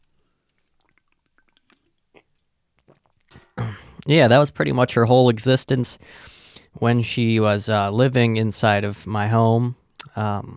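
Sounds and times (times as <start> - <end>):
person sipping water: 0.0 - 4.0
wet mouth clicks: 0.4 - 4.1
gulping swallows: 0.5 - 4.0
speech: 4.1 - 10.5.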